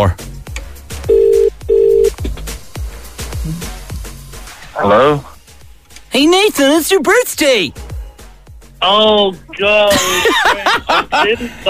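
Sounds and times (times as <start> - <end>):
speech: 0.0 - 0.3, 6.2 - 7.8, 8.8 - 11.6
telephone ringing out with electronic ringing tones: 1.1 - 2.1
laughter: 9.9 - 11.6.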